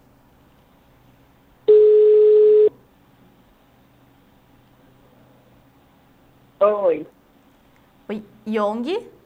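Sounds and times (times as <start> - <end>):
steady phone tone after a dropped call: 1.7 - 2.8
speech: 6.6 - 7.2, 8.1 - 9.1.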